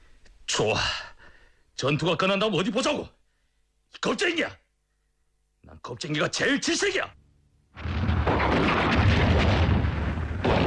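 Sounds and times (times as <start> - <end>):
speech: 0.6 - 1.1, 1.8 - 3.2, 3.9 - 4.6, 5.6 - 7.2
tank shell exploding behind a hill during a battle at dawn: 7.8 - 10.6.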